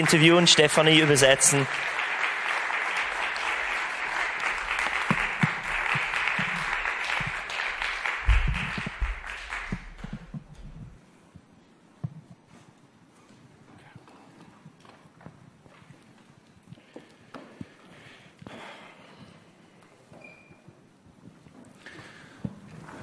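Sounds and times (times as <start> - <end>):
speech: 0.0 - 2.0
audience applause: 0.0 - 11.0.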